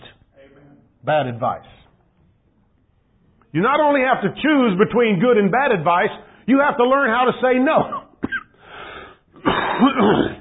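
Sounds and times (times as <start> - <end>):
speech: 1.0 - 1.8, 3.5 - 8.0
harsh wheezy coughing fit: 7.8 - 10.3.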